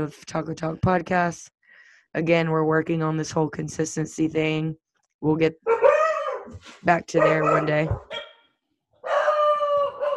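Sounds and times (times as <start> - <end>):
speech: 0.0 - 5.8, 6.5 - 8.3
dog barking loudly: 5.6 - 8.4, 9.0 - 10.1.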